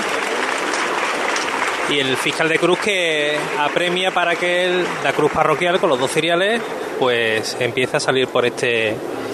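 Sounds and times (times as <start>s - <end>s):
large crowd applauding and cheering as basilica doors open: 0.0s - 6.8s
speech: 1.9s - 9.3s.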